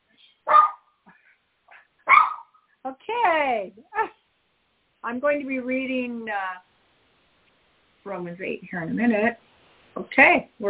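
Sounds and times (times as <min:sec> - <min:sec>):
dog barking sharply at the door: 0:00.5 - 0:00.9, 0:02.0 - 0:02.6
speech: 0:02.8 - 0:04.2, 0:05.0 - 0:06.7, 0:08.0 - 0:09.4, 0:10.0 - 0:10.6.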